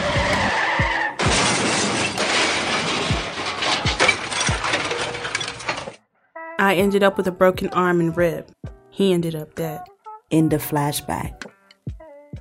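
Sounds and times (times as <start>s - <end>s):
tires screeching: 0.0s - 5.9s
car crash: 0.0s - 6.0s
debris scattering: 0.0s - 6.0s
metal crunching: 0.0s - 6.0s
glass shattering: 1.2s - 6.0s
speech: 6.7s - 11.6s.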